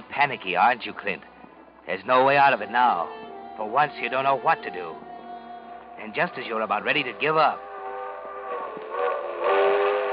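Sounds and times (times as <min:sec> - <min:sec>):
speech: 0:00.2 - 0:01.3, 0:01.9 - 0:05.1, 0:06.0 - 0:07.7
train whistle blast: 0:02.7 - 0:10.1.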